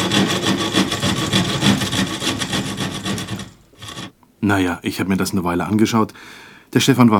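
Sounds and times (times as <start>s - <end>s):
clumsy hand-sawing along a wooden plank: 0.0s - 4.1s
speech: 4.4s - 7.1s.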